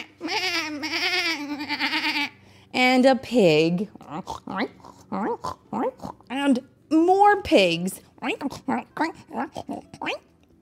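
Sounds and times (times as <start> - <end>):
goat bleating on a farm: 0.0 - 2.4
speech: 3.0 - 10.3.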